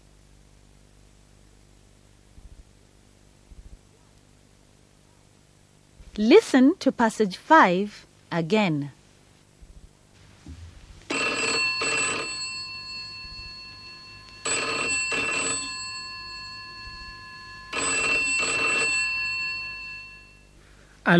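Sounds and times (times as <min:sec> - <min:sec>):
speech: 0:06.2 - 0:09.0
telephone ringing with bright electronic trilling: 0:11.1 - 0:20.6.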